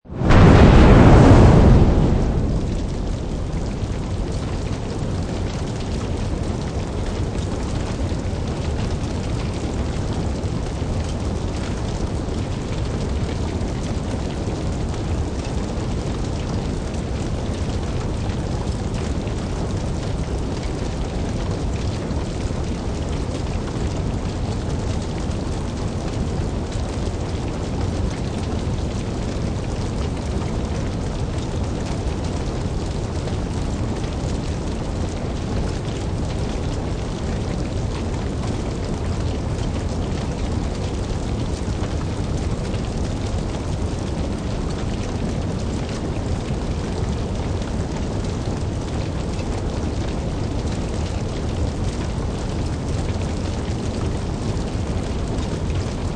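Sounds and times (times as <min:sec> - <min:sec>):
large fire whoosh bursting into flames in a building: 0:00.0 - 0:05.6
fire burning evenly in a building: 0:00.1 - 0:56.1.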